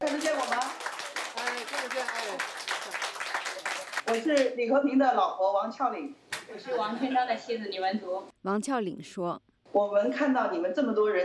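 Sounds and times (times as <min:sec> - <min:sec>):
audience applause: 0:00.0 - 0:04.1
speech: 0:04.1 - 0:11.2.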